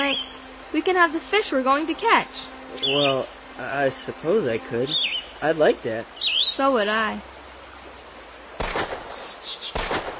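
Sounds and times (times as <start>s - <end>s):
speech: 0.0s - 7.3s
gunshots from behind distant hills: 8.6s - 10.1s.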